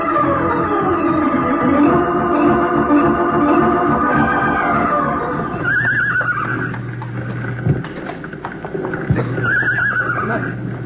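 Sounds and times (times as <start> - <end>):
steady rumbling background: 0.0 - 9.5
frightened horses whinnying in a burning barn: 4.5 - 7.0, 9.1 - 10.6
clattering hooves: 4.6 - 10.8.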